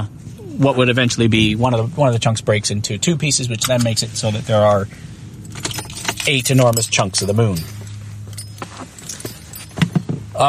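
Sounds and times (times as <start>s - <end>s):
speech: 0.0s - 7.8s
low steady hum: 0.0s - 10.4s
keys jingling and clinking in front of a microphone: 5.4s - 10.4s.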